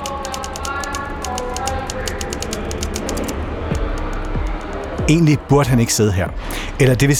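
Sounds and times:
keys clacking on an old typewriter in a prison cell: 0:00.0 - 0:05.0
low murmur of indistinct voices of prison guards: 0:00.0 - 0:07.1
quiet chatter of other inmates: 0:00.0 - 0:07.1
speech: 0:05.1 - 0:07.1.

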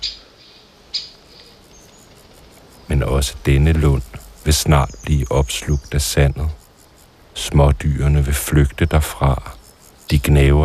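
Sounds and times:
bird calling with sharp squawking notes in a small grove: 0:00.0 - 0:01.4
speech: 0:02.9 - 0:06.6, 0:07.4 - 0:10.6.

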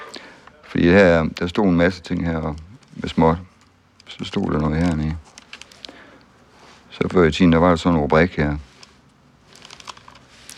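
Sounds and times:
small paper coupon crinkling and tapping as it is turned over: 0:00.2 - 0:06.3, 0:08.7 - 0:10.5
speech: 0:00.7 - 0:03.5, 0:04.1 - 0:05.4, 0:07.0 - 0:08.7.

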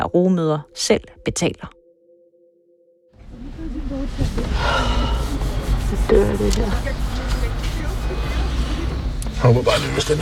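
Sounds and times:
speech: 0:00.0 - 0:01.8, 0:05.9 - 0:07.2, 0:09.4 - 0:10.2
low rumble inside a car waiting at the Poland to Ukraine border crossing: 0:03.2 - 0:10.2
faint voices murmuring: 0:03.3 - 0:10.2.

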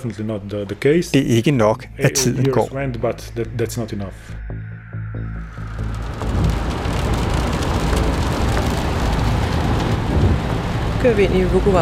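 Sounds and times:
speech: 0:00.0 - 0:06.0, 0:11.0 - 0:11.8
low car engine and road rumble: 0:05.4 - 0:11.8
steady rain drumming on a car roof and windshield: 0:06.5 - 0:11.8.

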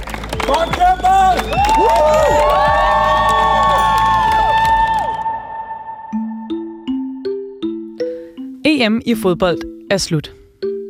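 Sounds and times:
fans cheering and shouting at airport team welcome: 0:00.4 - 0:06.0
whistles: 0:00.5 - 0:02.0
bright chiming melody of rising tones: 0:03.7 - 0:04.8, 0:05.8 - 0:10.8
speech: 0:08.8 - 0:10.4.

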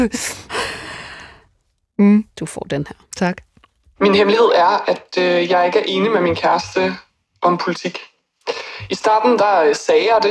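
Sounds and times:
speech: 0:00.0 - 0:00.6, 0:02.0 - 0:10.2
dramatic breathy gasp: 0:00.4 - 0:01.4, 0:08.5 - 0:08.9.

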